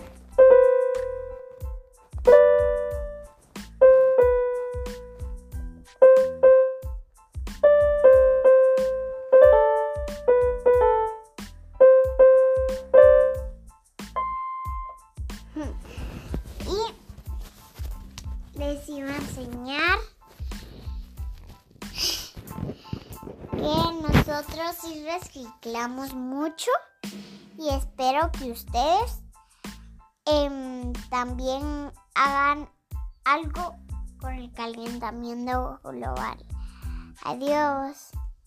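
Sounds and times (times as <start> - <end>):
electronic keyboard playing a simple melody over a low accompaniment pattern: 0.0 - 15.8
speech: 24.8 - 26.9, 27.6 - 29.2, 30.3 - 32.7, 33.3 - 36.5, 37.2 - 38.2.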